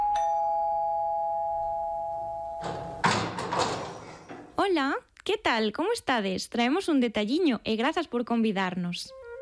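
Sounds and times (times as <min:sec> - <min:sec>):
doorbell chime as visitors arrive at a home: 0:00.0 - 0:03.0
clattering and shuffling: 0:02.6 - 0:04.6
speech: 0:04.7 - 0:09.2.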